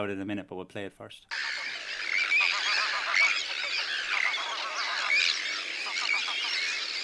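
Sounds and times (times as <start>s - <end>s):
speech: 0.0s - 1.8s
colony of Arctic and common terns screeching in Wexford: 1.3s - 7.0s.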